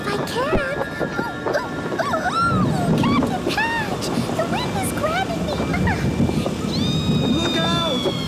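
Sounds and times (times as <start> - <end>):
gale-force wind at sea: 0.0 - 8.2
stormy surf at sea: 0.0 - 8.2
high squeaky chirps and vocal cries: 6.6 - 8.2.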